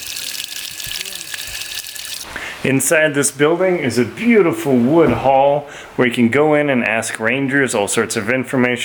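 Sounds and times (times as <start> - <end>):
water fountain gushing: 0.0 - 2.3
speech: 2.3 - 8.8.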